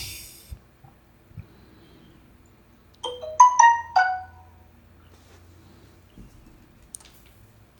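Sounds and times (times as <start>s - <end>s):
smartphone app notification chime: 3.1s - 4.6s.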